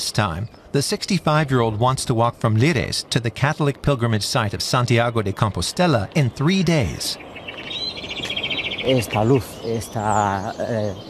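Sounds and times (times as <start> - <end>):
birds singing at dawn: 0.0 - 11.0
speech: 0.1 - 7.3, 8.8 - 11.0.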